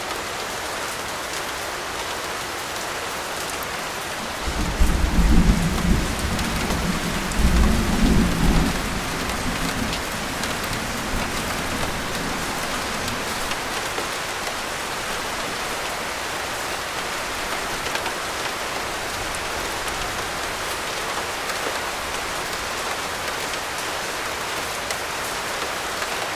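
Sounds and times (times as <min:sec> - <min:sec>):
heavy rain: 0:00.0 - 0:26.3
low rumbling thunder roll: 0:04.4 - 0:13.7.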